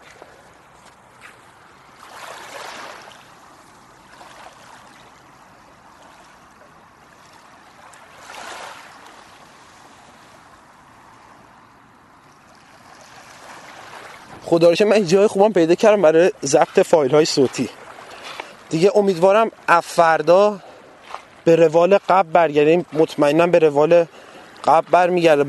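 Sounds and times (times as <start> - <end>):
sea waves breaking: 0.0 - 25.4
speech: 14.5 - 17.8, 18.7 - 20.7, 21.5 - 25.4.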